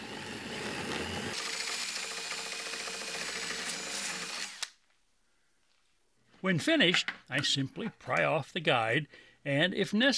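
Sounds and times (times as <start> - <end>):
power drill running a hole saw through wood in a template guide: 0.0 - 4.8
speech: 6.4 - 10.1.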